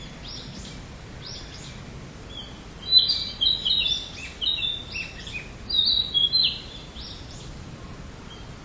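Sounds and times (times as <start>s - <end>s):
low background noise: 0.0s - 8.6s
Narcissus flycatcher singing bright whistled phrases: 2.8s - 7.2s.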